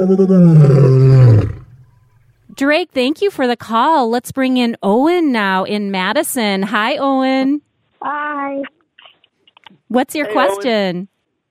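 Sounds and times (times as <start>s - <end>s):
speech: 0.0s - 1.6s, 2.6s - 8.8s, 9.9s - 11.1s
lion giving a loud deep roar: 0.0s - 1.9s.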